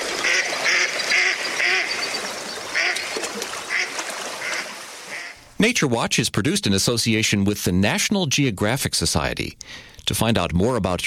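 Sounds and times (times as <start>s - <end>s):
mallard duck quacking: 0.2s - 3.1s, 3.7s - 5.4s
speech: 5.6s - 11.0s.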